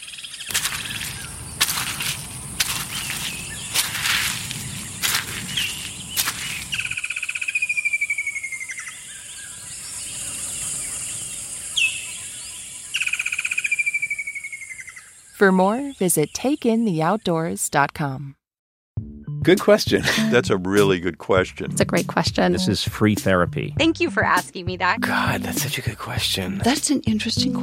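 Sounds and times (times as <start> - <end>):
steady high insect hiss in a forest: 0.1 - 15.3
crunching footsteps on a forest walk: 0.5 - 7.0
descending bird whistles and chirps in a forest: 5.5 - 15.1
speech: 15.4 - 18.4, 19.4 - 27.6
laughter: 19.7 - 21.0.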